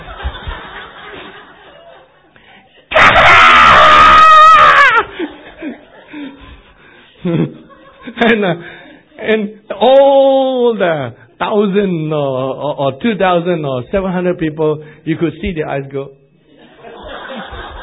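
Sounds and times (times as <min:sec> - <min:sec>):
laughter-like murmurs: 0:00.0 - 0:02.8, 0:05.0 - 0:08.7, 0:16.5 - 0:17.8
person imitating a loud piercing scream: 0:02.9 - 0:05.1
speech: 0:07.2 - 0:07.5, 0:08.3 - 0:16.2.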